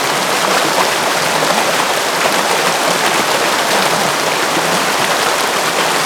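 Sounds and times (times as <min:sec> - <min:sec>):
waterfall gurgle: 0:00.0 - 0:06.0.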